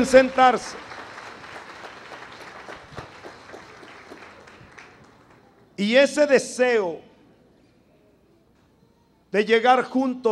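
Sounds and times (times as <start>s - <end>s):
speech: 0.0s - 0.9s, 5.8s - 7.1s, 9.3s - 10.3s
church congregation applauding married couples: 0.0s - 5.6s.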